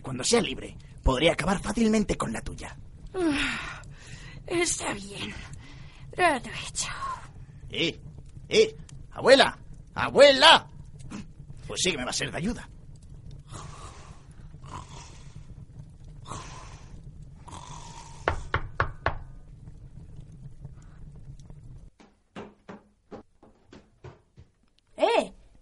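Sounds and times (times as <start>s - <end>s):
speech: 0.1s - 3.9s, 4.5s - 5.6s, 6.2s - 12.7s
low breathy rumble: 2.6s - 10.0s, 12.6s - 18.7s, 19.3s - 21.9s
sharp knocking on a door: 18.3s - 19.3s, 22.0s - 24.6s.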